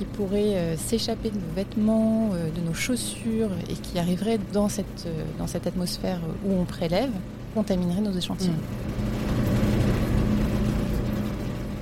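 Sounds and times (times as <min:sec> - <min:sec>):
speech: 0:00.0 - 0:09.2
loud ventilation blower roaring in clean-room airlock: 0:00.0 - 0:11.8.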